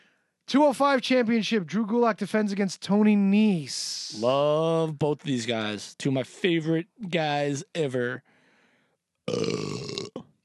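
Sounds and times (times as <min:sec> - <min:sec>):
speech: 0:00.5 - 0:08.3, 0:09.3 - 0:10.0
person burping: 0:09.3 - 0:10.4.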